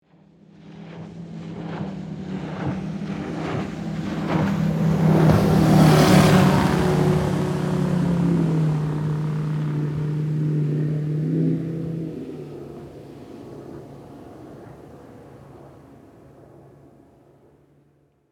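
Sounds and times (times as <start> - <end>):
motorboat passing by close: 0.0 - 18.3.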